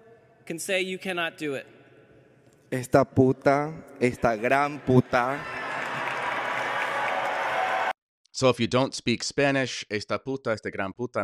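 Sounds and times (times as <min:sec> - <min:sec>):
speech: 0:00.5 - 0:01.8, 0:02.7 - 0:05.6, 0:08.4 - 0:11.2
large crowd roaring and cheering in a church: 0:04.4 - 0:08.0
clapping: 0:05.6 - 0:07.9.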